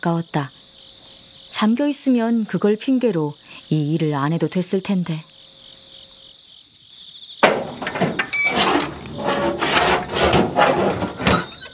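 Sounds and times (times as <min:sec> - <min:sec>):
speech: 0:00.0 - 0:00.6, 0:01.6 - 0:05.3
rusty iron gate at an abandoned house creaking open: 0:07.4 - 0:11.7.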